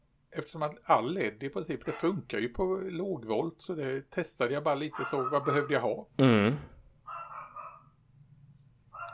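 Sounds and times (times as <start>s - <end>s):
speech: 0.4s - 6.7s
dog barking: 1.8s - 2.2s, 4.9s - 5.9s, 7.1s - 8.0s, 8.9s - 9.1s.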